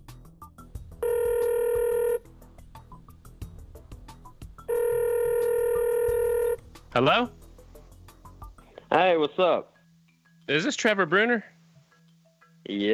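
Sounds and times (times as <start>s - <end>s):
telephone ringing while dialing a caller: 1.0s - 2.2s, 4.7s - 6.6s
speech: 6.9s - 7.4s, 9.0s - 9.7s, 10.5s - 11.5s, 12.6s - 12.9s.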